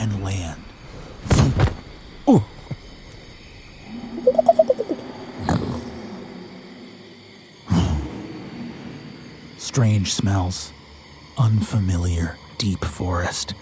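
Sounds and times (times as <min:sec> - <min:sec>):
steady hum in wet outdoor swamp: 0:00.0 - 0:13.6
speech: 0:02.3 - 0:02.5, 0:09.8 - 0:10.8, 0:11.4 - 0:13.6
croaking frog-like calls: 0:02.3 - 0:06.5.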